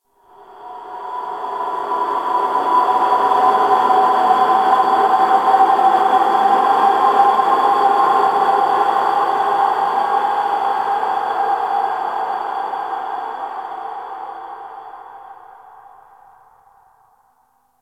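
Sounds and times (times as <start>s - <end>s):
wind in an ice cave: 0.1s - 17.8s.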